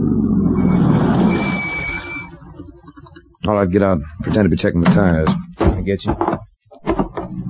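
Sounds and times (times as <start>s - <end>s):
car engine rumbling as it slows and stops: 0.0s - 5.0s
brief high squeal: 0.6s - 2.3s
speech: 3.4s - 6.4s.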